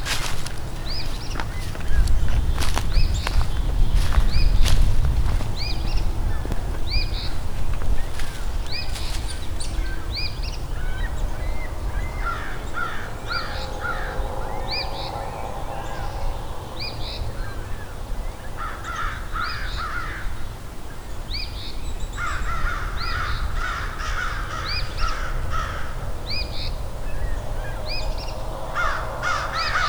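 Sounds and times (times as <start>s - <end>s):
crows cawing agitatedly: 0.0s - 9.2s, 10.8s - 20.5s, 22.2s - 26.3s, 27.2s - 29.8s
outdoor noise: 0.0s - 29.8s.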